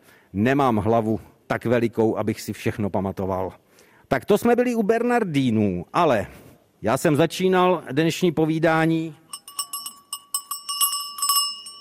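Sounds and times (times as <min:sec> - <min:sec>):
speech: 0:00.3 - 0:09.2
small souvenir cowbell ringing: 0:09.3 - 0:11.8.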